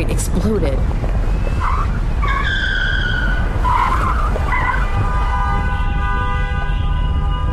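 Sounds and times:
low rumble of engine and road noise: 0.0s - 7.5s
speech: 0.2s - 1.2s
car tires screeching through a sharp right turn down a ramp: 0.8s - 6.4s.

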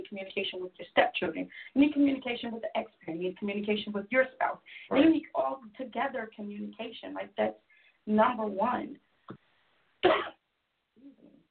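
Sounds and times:
speech: 0.1s - 9.4s, 10.0s - 10.4s
person coughing: 10.0s - 10.4s.

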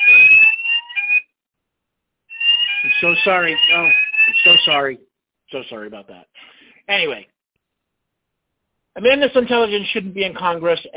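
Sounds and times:
fire alarm blaring a shrill high-pitched tone: 0.0s - 1.3s, 2.3s - 5.0s
speech: 2.9s - 7.3s, 9.0s - 10.9s.

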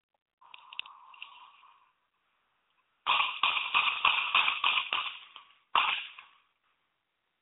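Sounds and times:
faint noise: 0.1s - 7.3s
gunshots from a recorded video clip: 3.0s - 6.4s.

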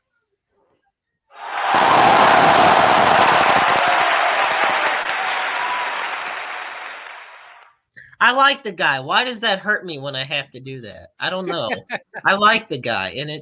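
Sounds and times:
crowd applause: 1.4s - 7.7s
laughter: 2.2s - 5.5s, 11.5s - 12.4s
speech: 8.3s - 13.4s.

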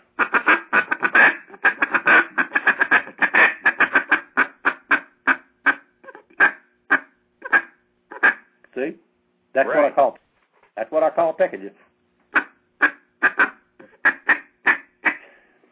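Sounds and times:
duck call blown for quacks: 0.1s - 8.5s, 12.3s - 15.4s
speech: 9.6s - 10.2s, 10.9s - 11.9s.

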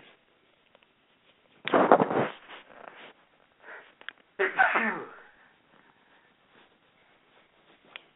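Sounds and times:
person sneezing forcefully: 4.4s - 5.4s.

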